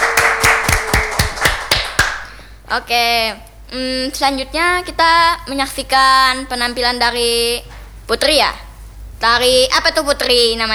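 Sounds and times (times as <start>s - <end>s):
rhythmic audience clapping at a stage performance: 0.0s - 2.6s
speech: 2.7s - 8.6s, 9.2s - 10.7s.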